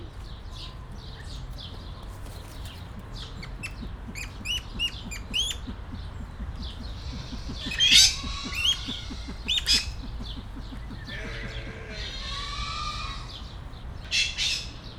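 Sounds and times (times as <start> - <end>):
silver pheasant at Kecskemét zoo: 0.0 - 14.8
golden pheasant at Kecskemét zoo: 2.0 - 14.8.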